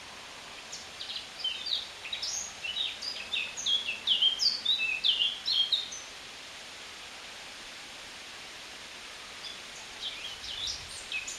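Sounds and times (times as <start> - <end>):
Eurasian blackcap singing a fast scratchy warble: 0.7 - 6.1, 9.4 - 11.3.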